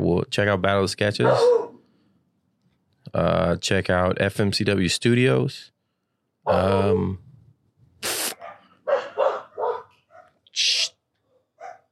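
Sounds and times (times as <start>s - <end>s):
speech: 0.1s - 1.7s, 3.1s - 5.7s, 6.4s - 7.2s, 10.6s - 10.9s
dogs barking: 1.2s - 1.8s, 8.4s - 10.4s, 11.3s - 11.9s.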